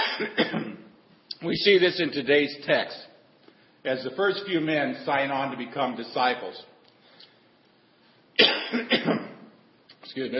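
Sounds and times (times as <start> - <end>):
person coughing: 0.0 - 0.9, 8.4 - 9.5
speech: 1.4 - 3.1, 3.8 - 6.7, 8.4 - 9.3, 10.1 - 10.3.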